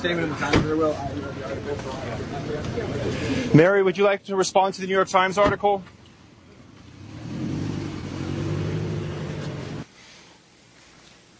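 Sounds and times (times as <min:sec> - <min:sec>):
speech: 0:00.0 - 0:06.0
car engine accelerating: 0:06.6 - 0:09.9.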